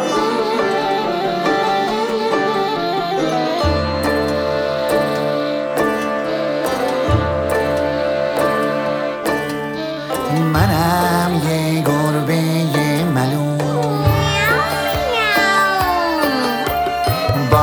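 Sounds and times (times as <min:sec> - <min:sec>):
bright musical backing: 0:00.0 - 0:17.6
person singing meow-like cries imitating a cat: 0:13.8 - 0:17.6.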